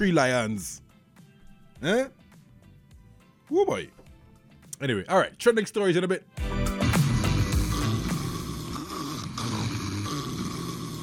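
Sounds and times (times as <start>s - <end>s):
speech: 0.0s - 0.8s, 1.8s - 2.2s, 3.5s - 4.0s, 4.8s - 6.6s
person snoring while asleep: 6.9s - 11.0s.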